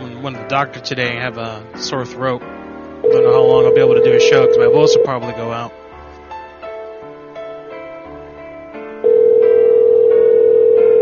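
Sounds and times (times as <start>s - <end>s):
speech: 0.2s - 5.8s
telephone ringing with no answer: 3.0s - 5.2s, 9.0s - 10.9s.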